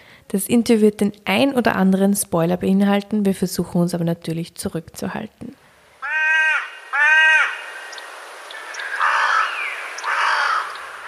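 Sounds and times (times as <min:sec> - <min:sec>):
speech: 0:00.3 - 0:05.6
crow cawing harshly: 0:06.0 - 0:11.0
soft scattered bird calls: 0:06.0 - 0:11.0.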